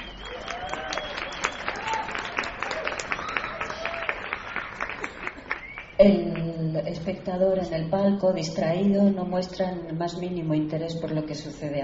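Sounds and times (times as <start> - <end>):
theatre audience applauding discreetly: 0.0 - 6.0
speech: 6.0 - 11.8.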